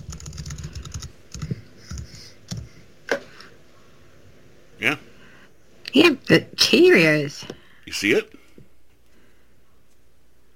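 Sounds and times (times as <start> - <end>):
woman typing on a computer keyboard: 0.0 - 2.6
speech: 4.8 - 5.0, 6.0 - 8.4.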